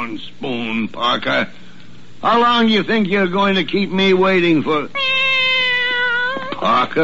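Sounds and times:
speech: 0.1 - 1.6, 2.2 - 5.0, 6.6 - 6.9
cat meowing: 4.9 - 6.8.

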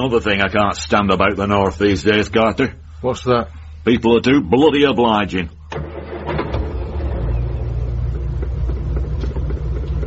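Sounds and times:
speech: 0.0 - 5.9
car engine revving as the car pulls away: 5.7 - 10.0.

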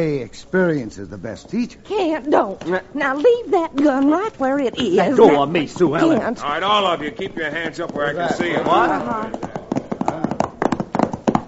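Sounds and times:
speech: 0.0 - 9.5
horse hooves clip-clopping: 2.3 - 11.4.

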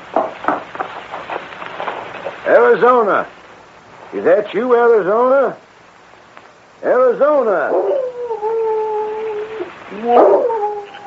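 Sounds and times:
speech: 2.7 - 3.4, 4.1 - 5.6, 6.8 - 8.0, 9.9 - 10.5
dog howling: 7.6 - 11.0.

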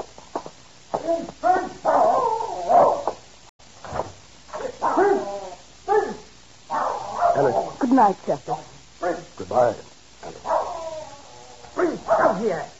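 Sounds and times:
speech: 1.1 - 2.2, 8.0 - 8.7, 9.5 - 9.9, 12.4 - 12.7
dog barking: 1.1 - 3.2, 4.6 - 5.3, 5.9 - 7.8, 9.0 - 9.3, 10.4 - 10.9, 11.8 - 12.7.

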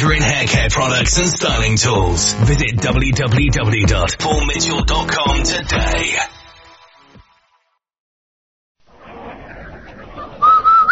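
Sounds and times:
speech: 0.1 - 6.4
man whistling a two-note phrase: 10.4 - 10.9.

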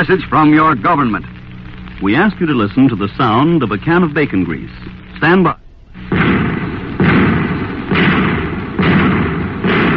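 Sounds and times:
speech: 0.0 - 1.4, 2.0 - 5.6
anti-tank shells being fired: 6.0 - 9.9.

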